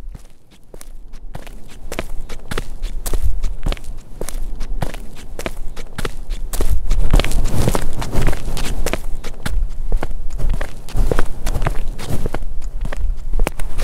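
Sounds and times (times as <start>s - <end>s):
footsteps on concrete: 0.0s - 13.8s.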